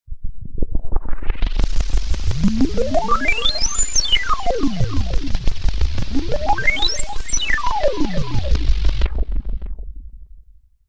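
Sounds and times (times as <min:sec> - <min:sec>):
electronic tune-up stinger: 0:01.5 - 0:09.8.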